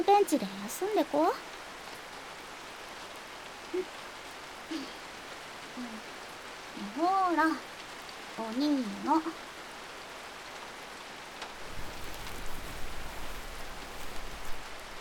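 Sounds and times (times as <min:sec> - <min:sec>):
speech: 0:00.0 - 0:01.6, 0:03.7 - 0:04.0, 0:04.7 - 0:05.0, 0:05.8 - 0:06.1, 0:06.8 - 0:07.7, 0:08.4 - 0:09.5
rain pattering on surfaces: 0:00.0 - 0:14.9.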